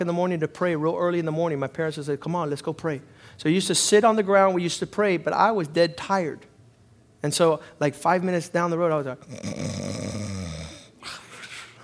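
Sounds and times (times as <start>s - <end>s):
speech: 0.0s - 6.5s, 7.2s - 10.1s
person imitating loud snoring: 9.2s - 11.1s.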